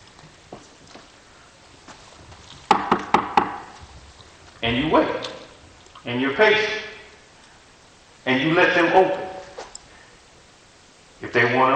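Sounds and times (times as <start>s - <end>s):
knocking on a door: 2.7s - 3.6s
speech: 4.6s - 5.3s, 6.0s - 6.8s, 8.2s - 9.2s, 11.4s - 11.7s.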